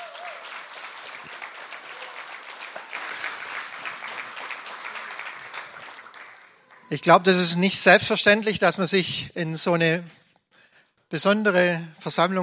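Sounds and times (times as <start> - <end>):
crowd applause: 0.0 - 7.5
speech: 6.9 - 10.2, 11.1 - 12.4.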